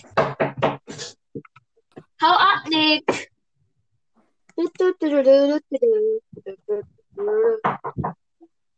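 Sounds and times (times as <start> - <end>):
knocking on a door: 0.0 - 0.9, 7.6 - 8.2
speech: 2.2 - 3.2, 4.8 - 8.0.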